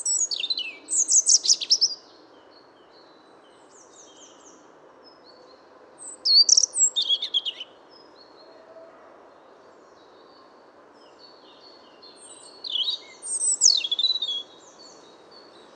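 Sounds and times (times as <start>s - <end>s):
European robin Erithacus rubecula singing high jumbled twittering: 0.0s - 8.4s, 9.6s - 15.7s.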